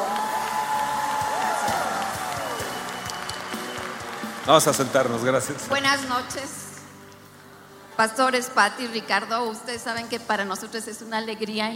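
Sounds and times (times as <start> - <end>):
audience applause in a church: 0.0 - 6.1
high sliding whistle-like tone: 2.2 - 4.0
speech: 4.5 - 6.7, 8.0 - 11.7.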